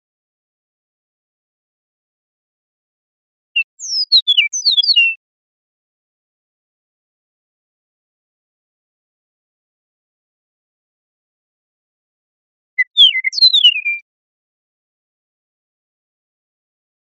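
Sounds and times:
Eastern meadowlark whistling song in Costa Rica: 0:03.6 - 0:05.2, 0:12.8 - 0:14.0.

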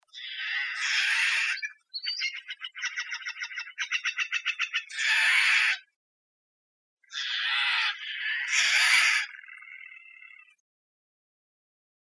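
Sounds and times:
Steller's jay screeching and rattling calls: 0:00.1 - 0:05.9, 0:07.1 - 0:10.6.

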